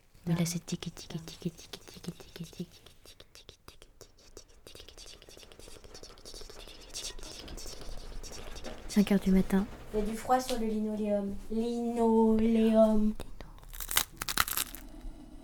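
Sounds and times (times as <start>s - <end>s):
speech: 0.3s - 3.5s, 9.0s - 13.2s
quiet murmuring voice: 0.3s - 9.0s
rain pattering on a skylight window: 7.1s - 12.6s.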